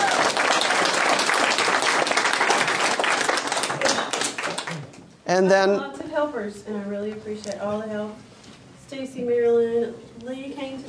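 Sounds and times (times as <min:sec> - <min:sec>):
audience round of applause: 0:00.0 - 0:04.9
speech: 0:05.3 - 0:08.3, 0:08.9 - 0:10.8.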